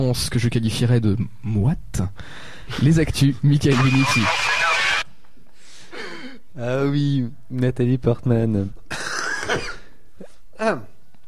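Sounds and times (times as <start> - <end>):
speech: 0.0 - 4.5, 6.6 - 8.8, 10.6 - 10.9
person coughing in a studio: 8.9 - 10.4.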